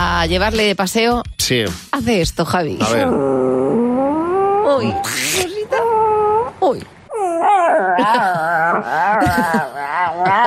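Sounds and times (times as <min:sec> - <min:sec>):
speech: 0:00.2 - 0:03.5, 0:04.7 - 0:05.8, 0:06.6 - 0:06.9
chihuahua whimpering and howling: 0:02.9 - 0:10.4.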